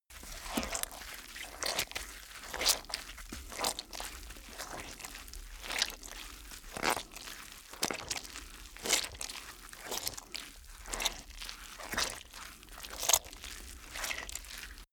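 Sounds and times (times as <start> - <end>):
blood squish: 0.1 - 14.9.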